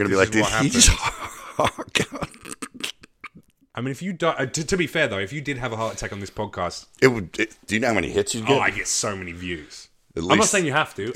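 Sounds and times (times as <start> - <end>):
speech: 0.0 - 2.2, 3.8 - 11.1
person coughing up phlegm: 0.7 - 3.4.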